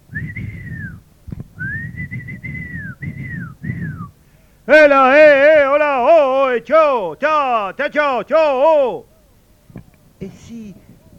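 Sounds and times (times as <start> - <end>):
shrill piercing whistle blasts: 0.1 - 1.0, 1.6 - 4.2
speech: 4.7 - 9.1.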